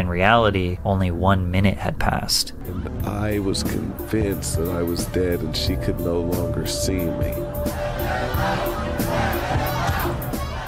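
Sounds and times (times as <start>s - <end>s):
speech: 0.0s - 9.2s
large crowd shouting at a man confined in a box of ice: 7.6s - 10.6s.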